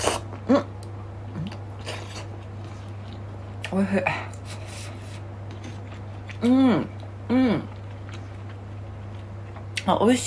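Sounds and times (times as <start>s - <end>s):
chewing of a hot ramen topping: 1.3s - 3.7s, 4.3s - 9.9s
speech: 3.7s - 4.4s, 6.4s - 7.7s, 9.9s - 10.2s.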